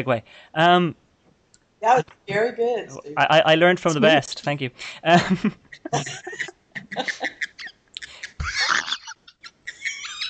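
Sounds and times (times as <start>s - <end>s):
speech: 0.0s - 1.0s, 1.8s - 7.5s
pet bird making raspy laughing chatter and squawks: 6.8s - 10.2s.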